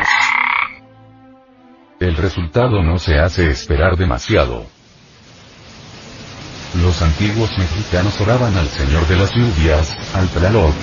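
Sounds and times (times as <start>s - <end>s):
toad croaking raspily: 0.0s - 0.8s
speech: 2.1s - 4.8s, 6.8s - 10.8s.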